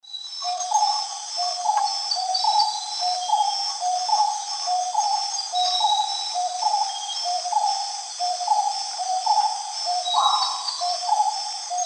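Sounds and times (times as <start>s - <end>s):
Odontophorus gujanensis song in South American Eastern Lowlands: 0.0s - 11.8s.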